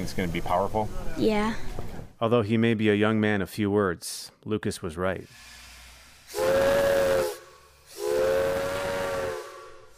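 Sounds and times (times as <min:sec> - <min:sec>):
speech: 0:00.0 - 0:05.6
steam escaping from a steam locomotive: 0:05.2 - 0:09.9
steam locomotive whistle blasts: 0:06.2 - 0:09.9.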